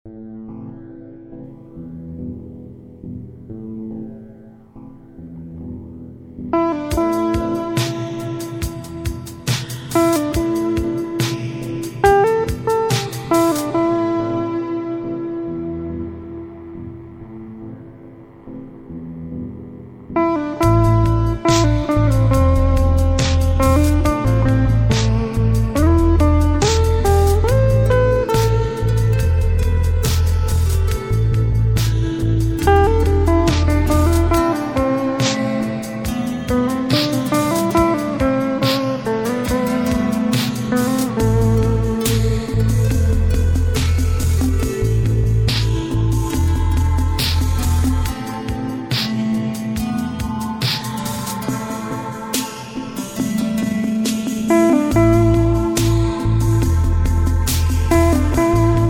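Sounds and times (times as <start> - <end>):
synthesizers: 0.1 - 58.8
reggae guitar: 0.3 - 58.8.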